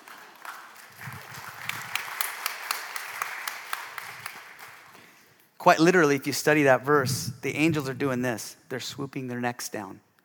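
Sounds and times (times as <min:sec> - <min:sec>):
audience clapping: 0:00.0 - 0:05.3
speech: 0:05.6 - 0:10.1.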